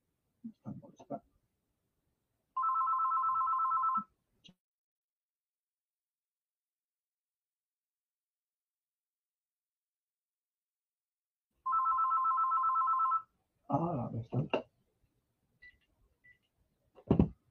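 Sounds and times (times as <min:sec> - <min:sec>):
telephone ringing with electronic trilling: 0:02.6 - 0:04.1, 0:11.6 - 0:13.3
speech: 0:13.7 - 0:14.6.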